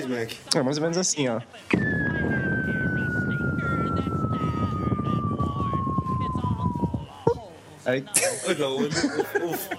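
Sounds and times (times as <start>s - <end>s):
busy background: 0.0s - 9.7s
speech: 0.1s - 2.4s, 7.9s - 9.7s
voice imitating a trash bin sensor sound of trash falling down a deep well: 1.7s - 7.4s
laughter: 8.2s - 9.7s.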